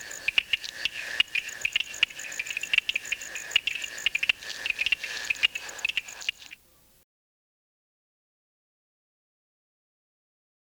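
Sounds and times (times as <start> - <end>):
shrill insect drone: 0.0 - 6.5
Uperoleia lithomoda stonemason toadlet clicking calls: 0.0 - 6.6.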